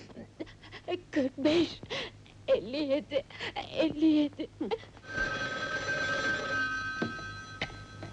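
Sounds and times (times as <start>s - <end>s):
speech: 0.9s - 2.0s, 2.6s - 5.3s
telephone ringing with an electronic trill: 5.0s - 8.1s.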